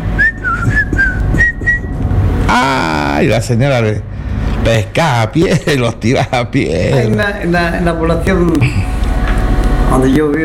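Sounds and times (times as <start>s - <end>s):
low rumble of noise: 0.0s - 10.4s
boy whistling a catcall at an old woman: 0.1s - 2.0s
speech: 2.5s - 8.9s, 9.9s - 10.4s.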